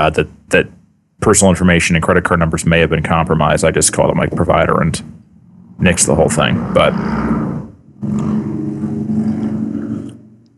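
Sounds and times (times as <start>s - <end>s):
speech: 0.0s - 5.2s, 5.8s - 8.3s
motorcycle engine passing by outside: 5.4s - 10.2s.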